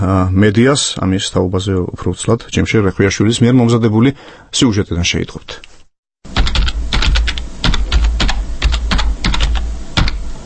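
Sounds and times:
speech: 0.0s - 5.7s
computer keyboard typing as a web address is entered: 6.3s - 10.2s.

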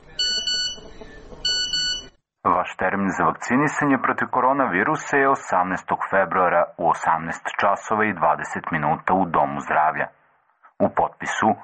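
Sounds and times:
phone text-message notification beeping: 0.2s - 0.8s, 1.4s - 2.1s
speech: 2.7s - 10.2s, 10.8s - 11.6s.

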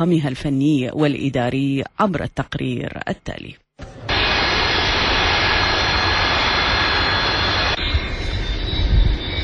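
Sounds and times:
speech: 0.0s - 3.6s
Boeing 737 jet airliner landing at Baghdad International Airport: 3.9s - 9.4s.

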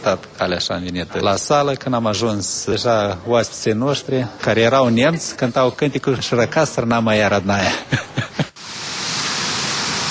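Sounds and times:
speech: 0.0s - 8.4s
laughter: 7.6s - 8.6s
water pouring down a waterfall at Milești Mici: 8.6s - 10.0s.

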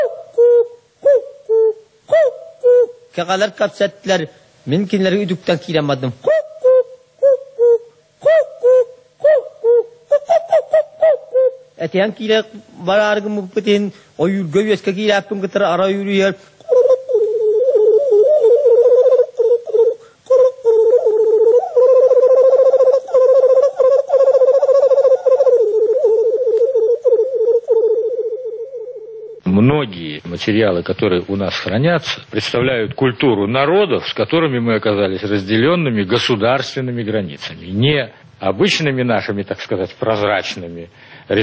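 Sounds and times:
man singing a Yakut hunter's song imitating bird calls: 0.0s - 3.9s, 5.2s - 13.6s, 15.9s - 29.5s
speech: 3.2s - 6.4s, 11.9s - 16.5s, 30.4s - 41.4s.

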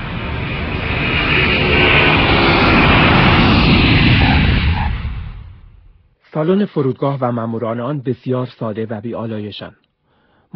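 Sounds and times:
landing airplane engines and rushing air roaring: 0.0s - 6.0s
speech: 6.4s - 9.8s.

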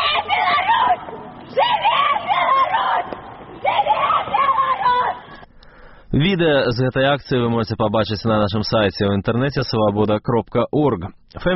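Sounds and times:
female activists shouting chants at night in Kyiv: 0.0s - 5.4s
speech: 6.2s - 11.5s.

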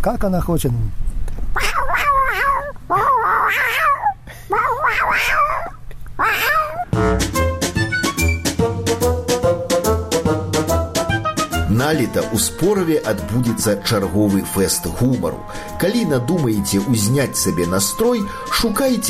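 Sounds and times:
speech: 0.0s - 1.8s, 11.8s - 19.0s
person imitating a caterwauling cat in heat: 1.6s - 6.9s
upbeat music: 6.9s - 19.0s.

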